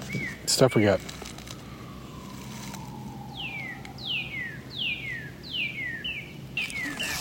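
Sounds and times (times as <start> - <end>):
cardinal spring song of down-slurred whistles: 0.0 - 7.1
speech: 0.5 - 1.2.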